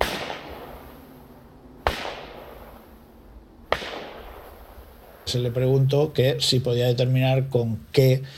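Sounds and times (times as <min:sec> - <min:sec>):
gunshots: 0:00.0 - 0:01.1, 0:01.8 - 0:02.9, 0:03.7 - 0:05.5
speech: 0:05.3 - 0:08.3.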